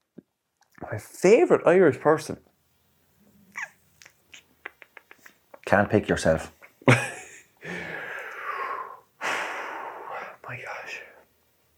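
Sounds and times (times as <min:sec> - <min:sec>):
speech: 0:00.8 - 0:02.5, 0:05.7 - 0:07.1
heavy breathy puffing and panting breaths: 0:07.6 - 0:10.4.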